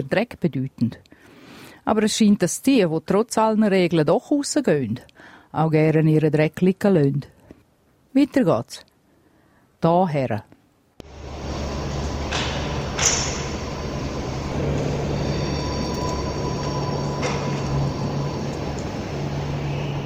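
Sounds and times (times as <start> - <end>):
speech: 0.0 - 1.2, 1.8 - 7.3, 8.2 - 8.9, 9.8 - 10.5
steady low hum in an empty train station: 11.0 - 20.0.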